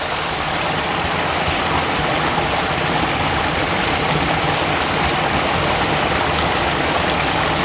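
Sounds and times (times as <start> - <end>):
stream rushing through a short road tunnel: 0.0 - 7.6.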